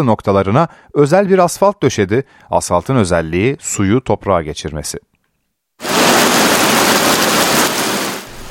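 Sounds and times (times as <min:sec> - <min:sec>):
speech: 0:00.0 - 0:05.1
heavy rain pouring down: 0:05.8 - 0:08.4.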